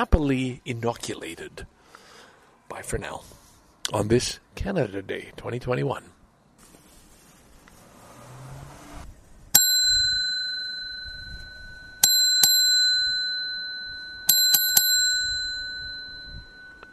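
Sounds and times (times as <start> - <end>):
speech: 0.0 - 1.8, 2.7 - 6.2
bicycle bell dings: 9.6 - 16.9.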